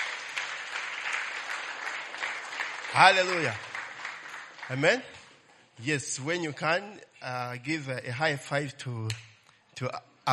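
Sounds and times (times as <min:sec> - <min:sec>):
crowd clapping: 0:00.0 - 0:05.6
speech: 0:03.0 - 0:03.6, 0:04.7 - 0:05.2, 0:05.8 - 0:10.3.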